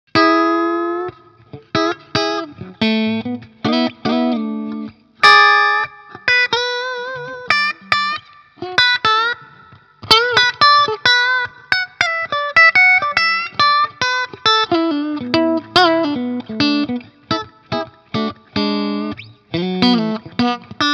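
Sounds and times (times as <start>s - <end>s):
Fender Squier Bullet Strat clean electric guitar on middle and bridge pickups: 0.1s - 20.9s.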